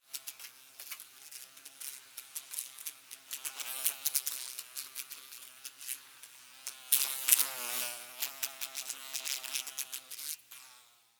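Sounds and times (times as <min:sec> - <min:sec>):
fly buzzing around a light bulb: 0:00.0 - 0:11.1.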